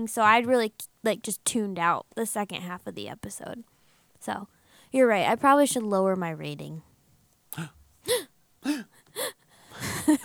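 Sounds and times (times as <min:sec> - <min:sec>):
speech: 0:00.0 - 0:06.9, 0:07.5 - 0:09.3, 0:10.0 - 0:10.2
short sharp gasps: 0:07.6 - 0:09.8.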